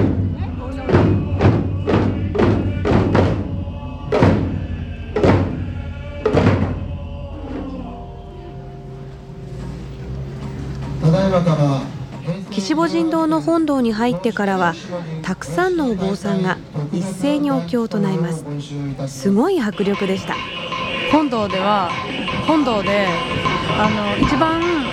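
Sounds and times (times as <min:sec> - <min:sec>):
taiko drums beaten by about a hundred people in a temple's main hall: 0:00.0 - 0:12.3, 0:19.6 - 0:24.9
speech: 0:12.6 - 0:24.9.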